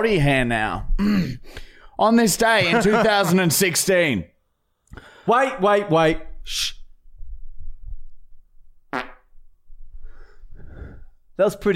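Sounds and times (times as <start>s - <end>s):
speech: 0.0s - 4.3s, 4.9s - 6.8s, 8.9s - 9.1s, 11.4s - 11.7s
short buzzy fake fart noise: 8.9s - 9.3s.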